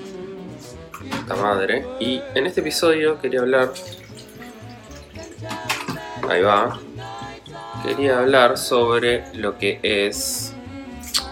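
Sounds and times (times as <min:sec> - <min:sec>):
speech: 0:01.3 - 0:04.0, 0:06.3 - 0:06.8, 0:07.8 - 0:10.5
water pouring into a container: 0:03.6 - 0:10.2.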